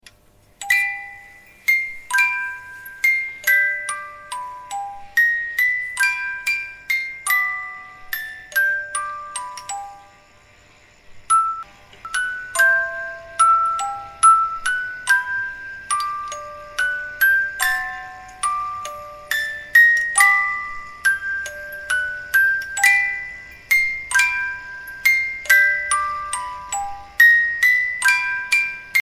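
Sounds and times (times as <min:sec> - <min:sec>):
vintage wooden Dutch windmill music box ringtone: 0:00.5 - 0:29.0.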